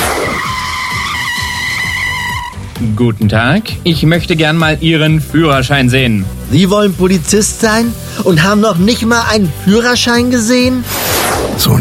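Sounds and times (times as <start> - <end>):
tire squeal from a car braking hard and skidding: 0.0 - 2.8
speech: 2.9 - 11.0, 11.6 - 11.7.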